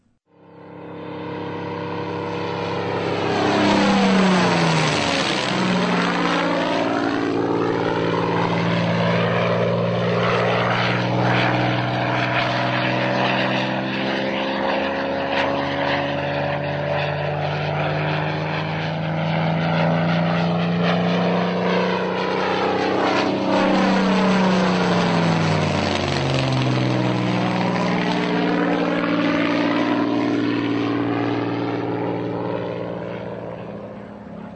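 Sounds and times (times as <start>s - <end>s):
Spitfire Rolls-Royce Merlin engine roaring as it passes by: 0.0s - 34.5s.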